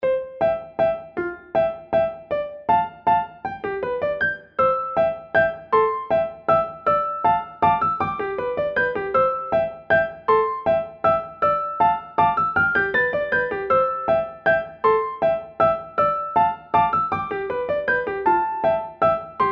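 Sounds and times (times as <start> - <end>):
kawaii piano music: 0.0 - 19.5.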